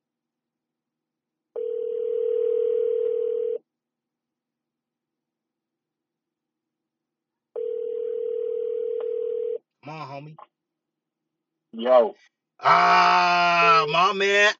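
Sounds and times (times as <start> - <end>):
telephone ringing tone: 1.6 - 3.6, 7.6 - 9.6
speech: 9.9 - 10.6, 11.7 - 14.5.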